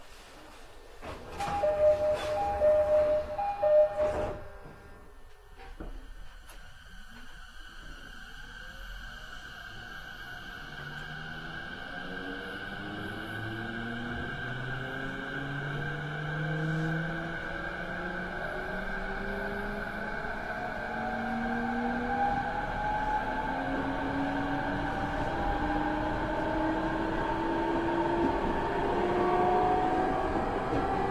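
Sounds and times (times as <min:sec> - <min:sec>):
209-2100 train on Uchibo Sotobo Togane lines: 0:00.0 - 0:31.0.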